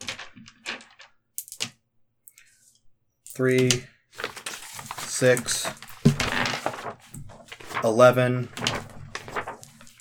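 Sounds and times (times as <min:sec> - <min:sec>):
eight four-sided dice rolled together: 0:00.0 - 0:02.4
speech: 0:03.4 - 0:03.9, 0:05.2 - 0:05.8, 0:07.8 - 0:08.6.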